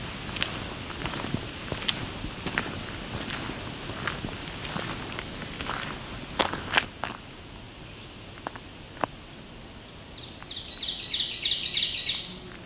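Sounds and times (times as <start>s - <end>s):
footsteps crunching on leaf litter: 0.2s - 7.2s, 7.8s - 12.6s
ovenbird singing repeated two-part chirps: 10.0s - 12.3s.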